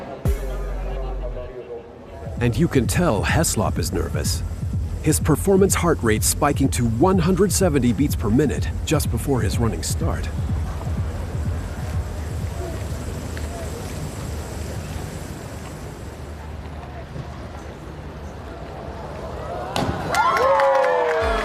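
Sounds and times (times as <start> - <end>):
crowd murmur: 0.0 - 20.1
speech: 2.4 - 10.5
crowd cheering and whistling: 19.1 - 21.4.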